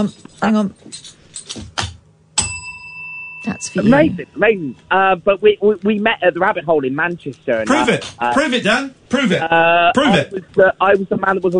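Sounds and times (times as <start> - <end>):
speech: 0.0 - 1.7, 3.4 - 11.5
clear bright metallic hand bell strike: 2.4 - 4.8.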